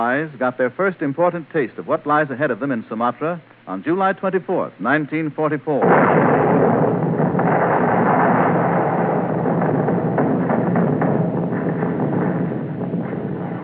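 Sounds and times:
speech: 0:00.0 - 0:06.7
naval gunfire as a task force bombards a fortified island: 0:05.8 - 0:13.6.

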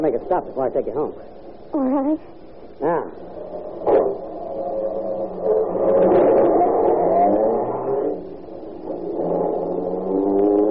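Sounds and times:
speech: 0:00.0 - 0:04.0
new car engine starting and revving: 0:05.1 - 0:10.6.

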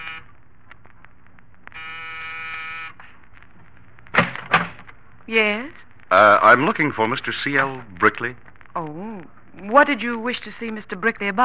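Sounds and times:
apartment door buzzer being pressed in a New York apartment building corridor: 0:00.0 - 0:00.3, 0:01.8 - 0:03.0
speech: 0:05.3 - 0:11.4.

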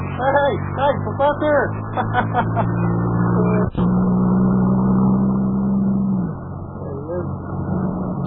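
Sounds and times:
car engine humming as car pulls up: 0:00.0 - 0:08.2
speech: 0:00.2 - 0:03.9
laughter: 0:01.9 - 0:02.9.

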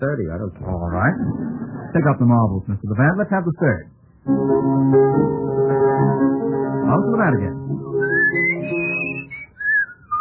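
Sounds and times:
speech: 0:00.0 - 0:06.3, 0:06.9 - 0:07.9
person whistling a classical overture melody: 0:08.0 - 0:10.1.

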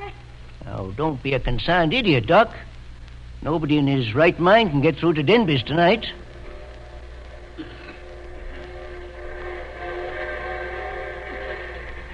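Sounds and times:
speech: 0:00.7 - 0:02.7, 0:03.4 - 0:06.2
train rumbling: 0:05.0 - 0:12.1.

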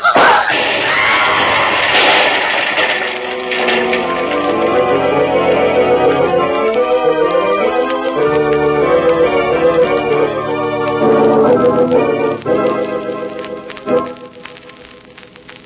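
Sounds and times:
crashing and rumbling debris: 0:00.0 - 0:14.4
loud gas-filled room explosion: 0:00.2 - 0:05.8.

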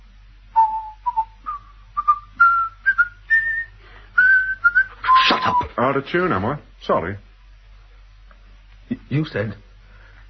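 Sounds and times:
person whistling a slow lilting melody: 0:00.6 - 0:05.7
speech: 0:05.8 - 0:07.3, 0:09.1 - 0:09.6.

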